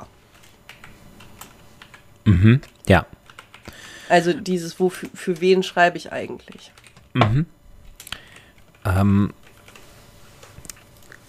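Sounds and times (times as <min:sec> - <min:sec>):
typing on a computer keyboard: 0:00.3 - 0:03.8, 0:06.4 - 0:07.1, 0:08.0 - 0:10.9
speech: 0:02.3 - 0:03.2, 0:04.1 - 0:07.6, 0:08.8 - 0:09.4.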